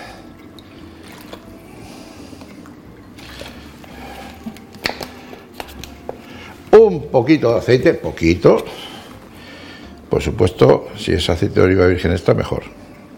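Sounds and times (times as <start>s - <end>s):
cool water pouring into a glass with crushed garlic: 0.2s - 5.5s
water splashing in a glass: 0.2s - 6.7s
speech: 7.1s - 8.9s, 10.2s - 12.8s.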